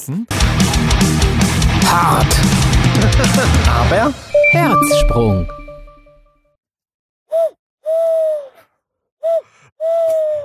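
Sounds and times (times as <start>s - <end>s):
speech: 0.0s - 5.6s
laughter: 2.9s - 4.0s
voice imitating an eagle-owl hoot: 7.3s - 8.6s, 9.2s - 10.4s.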